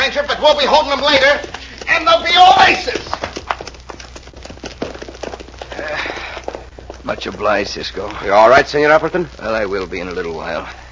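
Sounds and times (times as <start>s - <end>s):
hoofbeats of several ridden horses moving off at speed on hard ground: 0.0s - 10.7s
speech: 0.1s - 3.2s, 7.1s - 10.8s.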